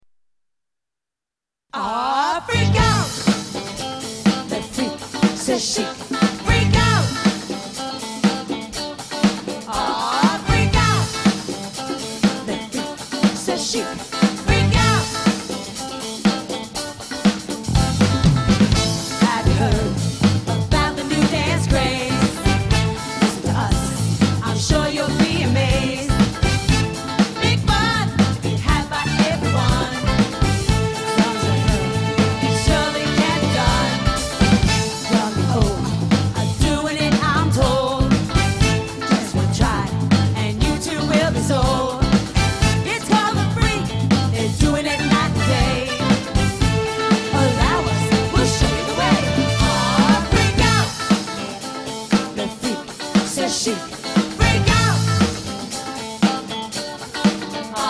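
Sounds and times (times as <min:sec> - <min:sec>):
disco band playing: 0:02.6 - 0:57.8.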